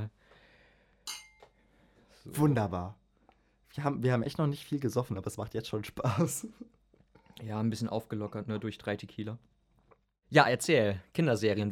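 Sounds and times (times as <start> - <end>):
glasses clinking in a toast: 1.1 - 1.5
speech: 2.3 - 3.0, 3.8 - 6.8, 7.4 - 9.5, 10.3 - 11.7.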